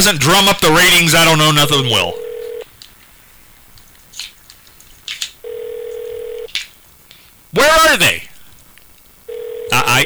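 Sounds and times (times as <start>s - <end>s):
speech: 0.0s - 2.2s, 7.5s - 8.3s, 9.7s - 10.0s
telephone ringing through the line during a live radio broadcast: 0.0s - 2.7s, 5.4s - 6.5s, 9.2s - 10.0s
soft clicks and rustles: 2.2s - 7.5s.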